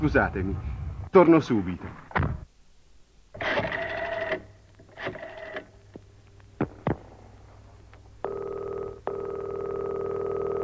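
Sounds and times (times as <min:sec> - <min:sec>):
speech: 0:00.0 - 0:02.3
public telephone dial mechanical whirs and clicks: 0:03.4 - 0:05.7, 0:08.2 - 0:10.6
public telephone electronic ringing tone: 0:08.2 - 0:10.6.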